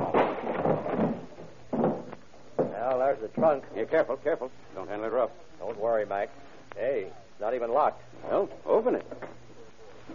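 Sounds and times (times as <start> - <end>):
wooden door being forced open, thudding and splintering: 0.0 - 2.8
speech: 3.1 - 9.4.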